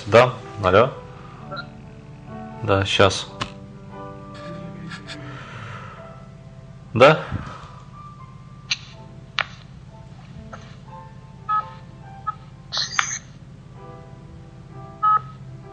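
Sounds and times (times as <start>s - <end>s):
speech: 0.0s - 1.0s, 2.6s - 3.4s, 6.9s - 7.5s
steady low hum: 0.0s - 15.7s
incoming-call ringtone of electronic melodic beeps: 11.5s - 13.0s, 15.0s - 15.3s.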